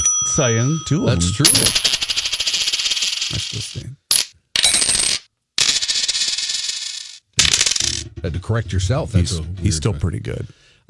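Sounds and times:
speech: 0:00.4 - 0:02.0, 0:03.3 - 0:04.0, 0:08.2 - 0:10.8
coins tossed into a jar: 0:01.4 - 0:08.0.

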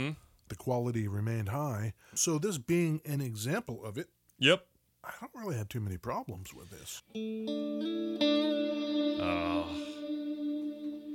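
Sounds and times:
speech: 0:00.0 - 0:08.3, 0:09.2 - 0:09.9
electric guitar chord through reverb and distortion pedals: 0:07.2 - 0:11.1.

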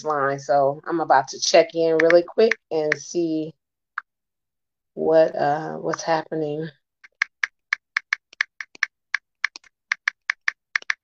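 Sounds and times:
speech: 0:00.0 - 0:03.6, 0:05.0 - 0:06.8
typing on a computer keyboard: 0:02.0 - 0:03.0, 0:07.0 - 0:11.0.

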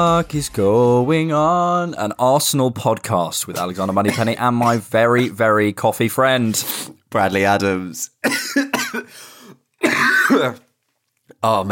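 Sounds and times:
speech: 0:00.0 - 0:08.7, 0:10.4 - 0:10.6, 0:11.4 - 0:11.7
person with hay fever coughing: 0:03.6 - 0:05.3, 0:08.2 - 0:10.7
rough and raspy throat clearing: 0:03.6 - 0:05.3, 0:08.2 - 0:09.1, 0:09.8 - 0:10.7.

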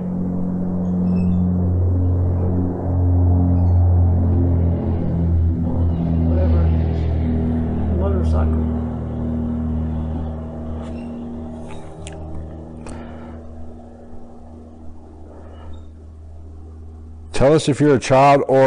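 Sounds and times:
airplane flying overhead: 0:00.0 - 0:18.6
faint voices murmuring: 0:05.5 - 0:11.0
speech: 0:17.4 - 0:18.6.

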